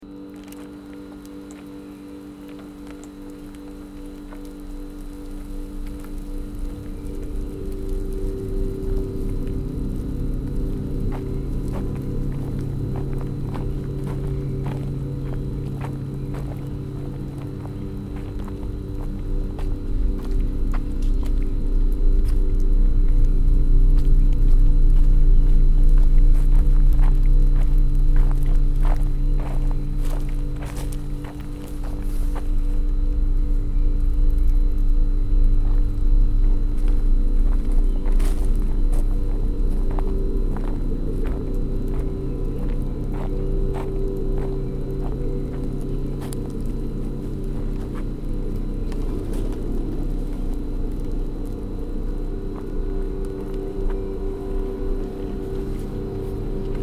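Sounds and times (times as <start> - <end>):
chill soundscape: 0.0 - 56.8.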